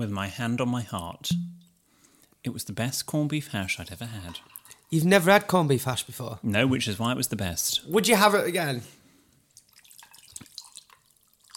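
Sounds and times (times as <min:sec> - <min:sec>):
speech: 0:00.0 - 0:01.6, 0:02.4 - 0:09.0
drink being poured with trickling and glugs: 0:09.7 - 0:11.5.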